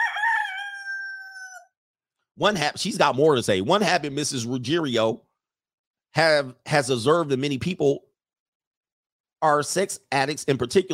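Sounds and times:
rooster crowing: 0.0 - 1.8
speech: 2.4 - 5.2, 6.1 - 8.1, 9.4 - 10.9.

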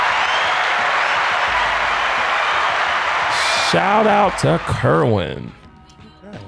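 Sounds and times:
dense crowd applause: 0.0 - 5.8
laughter: 1.4 - 5.7
speech: 3.7 - 5.6.

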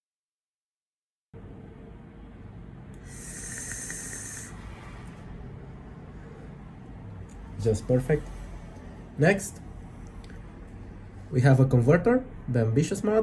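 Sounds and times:
vape coil crackling and sizzling on mouth-to-lung draw: 3.0 - 4.6
speech: 7.6 - 8.4, 9.2 - 9.7, 11.3 - 13.2.

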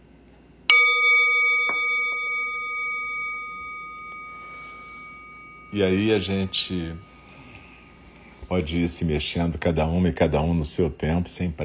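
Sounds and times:
meditation bell struck at the end of a meditation practice: 0.7 - 8.4
speech: 5.7 - 7.1, 8.5 - 11.6.

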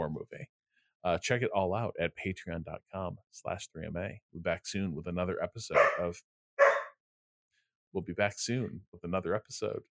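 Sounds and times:
speech: 0.0 - 6.4, 7.9 - 9.9
dog barking: 5.7 - 7.0.

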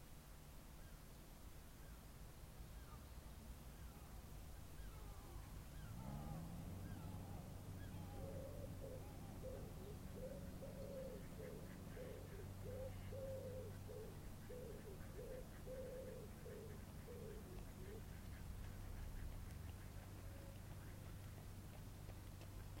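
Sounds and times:
constant low background hum: 0.0 - 22.7
pigeon cooing quietly in a small secluded park in Dublin: 4.9 - 19.5.

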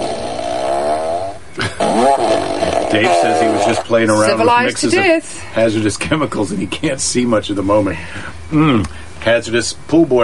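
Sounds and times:
person blowing buzzy raspberries imitating farts: 0.0 - 3.9
laughter: 1.6 - 2.0
speech: 2.9 - 10.2.

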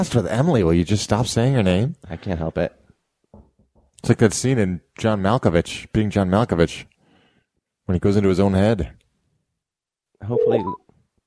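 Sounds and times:
speech: 0.0 - 2.8, 4.0 - 6.9, 7.9 - 9.0, 10.2 - 10.8
telephone dialing tones placing a call: 10.4 - 10.8.

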